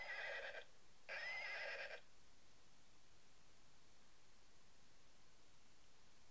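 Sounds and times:
horse neighing: 0:00.0 - 0:02.1.

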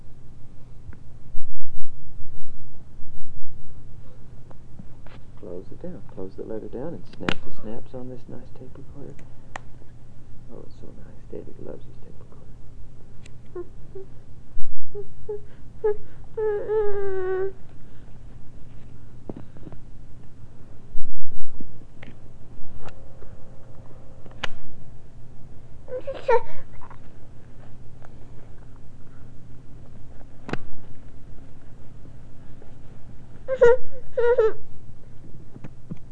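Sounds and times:
steady low hum: 0:00.0 - 0:36.0
speech: 0:05.6 - 0:09.4, 0:10.5 - 0:12.4, 0:13.5 - 0:14.3, 0:14.9 - 0:17.7, 0:26.1 - 0:26.6
baby fussing and whimpering late at night: 0:14.9 - 0:17.6, 0:25.9 - 0:27.1, 0:33.4 - 0:34.6.

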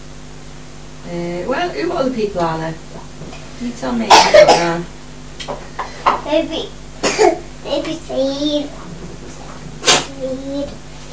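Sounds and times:
speech: 0:01.1 - 0:02.9, 0:03.6 - 0:05.7, 0:06.3 - 0:08.8, 0:10.2 - 0:10.8
sneeze: 0:09.8 - 0:10.2.

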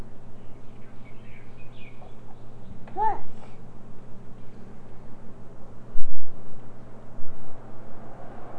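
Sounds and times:
steady low hum: 0:00.0 - 0:08.4
faint high bird chirps: 0:00.4 - 0:03.4.

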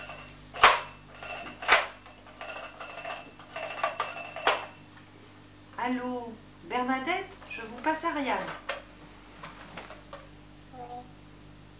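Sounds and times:
telephone ringing after dialing an international number to England: 0:00.0 - 0:04.9
speech: 0:05.9 - 0:08.6.

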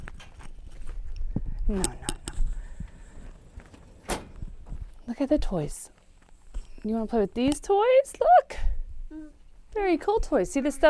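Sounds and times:
speech: 0:01.7 - 0:02.1, 0:05.1 - 0:06.0, 0:06.8 - 0:10.8
door closing: 0:03.9 - 0:04.4.

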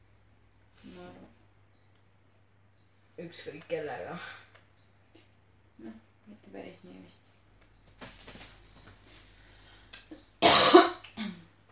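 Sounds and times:
speech: 0:03.2 - 0:04.4, 0:05.8 - 0:07.2
person coughing harshly: 0:10.4 - 0:11.4.

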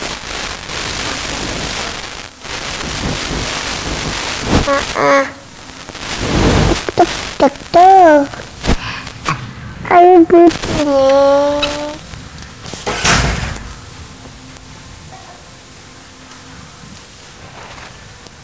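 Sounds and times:
heavy rain hissing: 0:00.0 - 0:17.8
speech: 0:04.7 - 0:05.4, 0:07.4 - 0:08.4, 0:10.0 - 0:11.8
low thunder rumble: 0:08.3 - 0:17.6.

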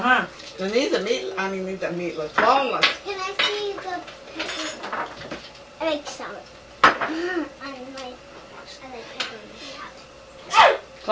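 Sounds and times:
speech: 0:00.0 - 0:04.1, 0:04.9 - 0:09.5
sharp loud sneeze: 0:10.5 - 0:10.8.

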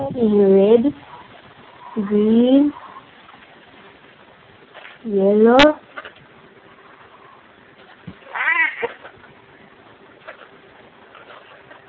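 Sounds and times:
faint steady hum: 0:00.0 - 0:11.8
speech: 0:00.1 - 0:01.1, 0:02.0 - 0:02.8, 0:05.0 - 0:05.8
cat meowing: 0:08.3 - 0:09.0.

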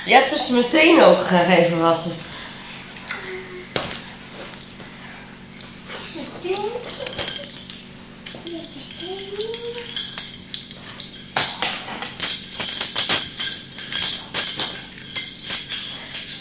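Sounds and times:
speech: 0:00.1 - 0:02.3
bunch of keys jingling: 0:05.5 - 0:16.3.

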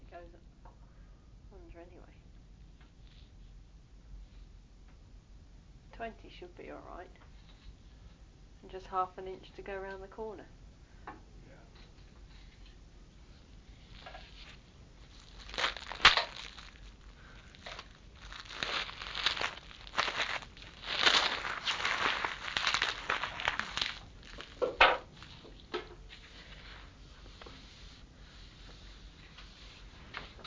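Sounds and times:
speech: 0:06.0 - 0:07.4, 0:08.6 - 0:11.3
coloured paper rustling and crinkling: 0:13.8 - 0:27.7.

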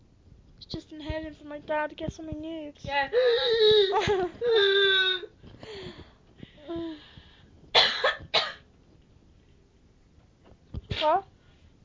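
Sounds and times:
speech: 0:00.6 - 0:05.3, 0:11.0 - 0:11.3
person in a coughing fit: 0:07.8 - 0:08.6.

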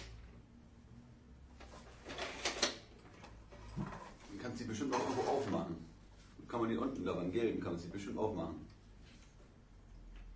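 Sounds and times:
cash register drawer being pushed shut: 0:02.0 - 0:02.9
speech: 0:03.8 - 0:05.9, 0:06.5 - 0:08.7.

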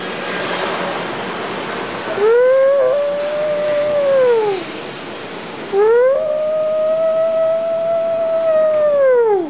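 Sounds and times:
constant hiss: 0:00.0 - 0:09.4
wolves howling: 0:02.1 - 0:04.7, 0:05.7 - 0:09.4.

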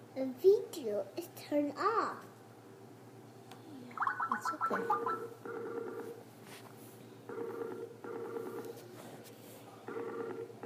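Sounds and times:
speech: 0:00.2 - 0:02.3, 0:04.0 - 0:06.7
outgoing phone call electronic ringing tone: 0:04.6 - 0:06.2, 0:07.3 - 0:08.8, 0:09.9 - 0:10.6.

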